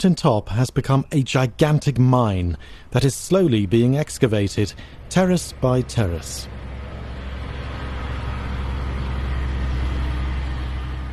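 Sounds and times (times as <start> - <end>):
speech: 0.0 - 6.6
heavy ore truck engine and road noise passing: 2.5 - 11.1.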